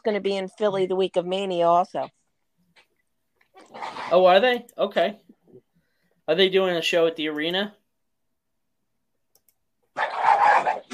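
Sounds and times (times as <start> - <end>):
speech: 0.0 - 2.2, 3.6 - 5.2, 6.3 - 7.8
dog snarling, barking and growling in a fight: 3.6 - 4.4, 9.9 - 10.9.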